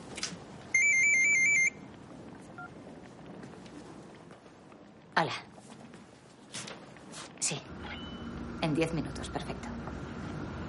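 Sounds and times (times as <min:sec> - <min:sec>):
mobile phone electronic ringtone of high beeping tones: 0:00.7 - 0:01.8
speech: 0:05.2 - 0:05.5, 0:07.5 - 0:07.7, 0:08.6 - 0:10.2.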